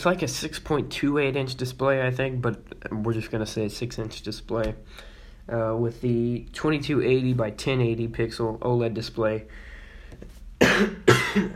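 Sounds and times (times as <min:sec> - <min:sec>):
speech: 0:00.0 - 0:11.5
sharp coughs: 0:10.6 - 0:11.5.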